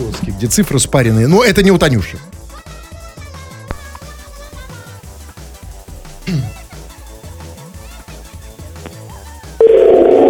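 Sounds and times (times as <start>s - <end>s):
speech: 0.4s - 2.3s
telephone ringback tone playing a busy rhythmic musical tune over the line: 9.6s - 10.2s.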